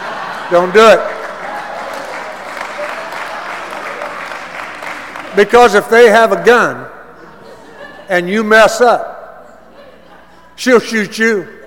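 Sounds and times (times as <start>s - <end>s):
laughter: 0.0s - 4.2s, 7.2s - 8.5s, 9.4s - 10.6s
audience applause: 0.0s - 5.9s
speech: 0.5s - 1.1s, 5.4s - 7.0s, 8.1s - 9.1s, 10.6s - 11.6s.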